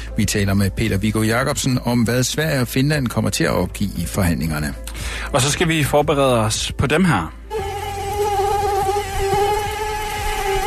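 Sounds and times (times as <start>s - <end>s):
speech: 0.2s - 7.7s
mosquito buzzing: 7.5s - 10.6s.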